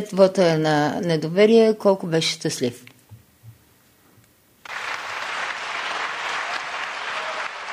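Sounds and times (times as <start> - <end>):
speech: 0.0 - 2.9
loud dense applause of members of parliament: 4.6 - 7.7.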